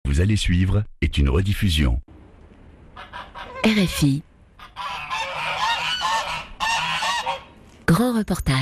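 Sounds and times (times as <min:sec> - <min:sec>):
speech: 0:00.2 - 0:02.1, 0:03.0 - 0:05.0, 0:07.9 - 0:08.6
hungry geese honking insistently at a person: 0:03.0 - 0:07.6.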